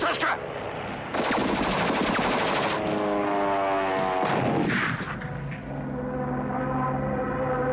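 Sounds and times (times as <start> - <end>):
aircraft engine droning whine: 0.0 - 7.7
machine gun burst: 1.1 - 2.9.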